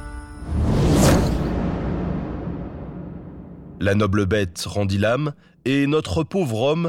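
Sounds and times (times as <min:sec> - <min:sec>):
arrow whooshing through the air: 0:00.5 - 0:03.8
speech: 0:03.8 - 0:06.8.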